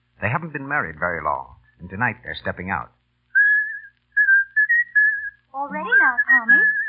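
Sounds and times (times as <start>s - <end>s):
speech: 0.2s - 3.0s, 5.6s - 6.8s
man whistling an old love song tune: 3.3s - 6.8s.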